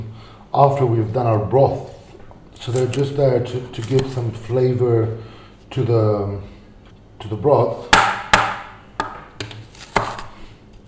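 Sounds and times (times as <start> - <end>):
speech: 0.0 - 2.0, 2.6 - 6.5, 7.2 - 8.1
knife chopping onions on a board: 7.9 - 10.3.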